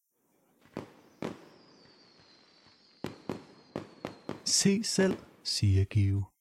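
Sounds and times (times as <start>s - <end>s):
fireworks bangs: 0.4s - 6.0s
crackly outdoor hiss: 0.4s - 6.2s
rising firework whistling streak: 0.6s - 5.5s
speech: 4.5s - 6.3s.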